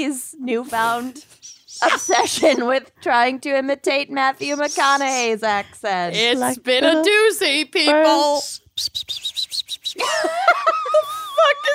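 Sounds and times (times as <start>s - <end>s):
speech: 0.0s - 11.7s
voice imitating bird chirps with peeps and twittering warble: 0.7s - 2.6s, 4.4s - 5.4s, 8.0s - 10.2s
laughter: 10.0s - 11.7s.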